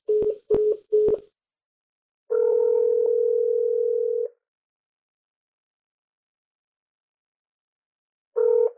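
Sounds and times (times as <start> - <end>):
steady telephone tone: 0.1 - 1.2, 2.3 - 4.3, 8.4 - 8.7.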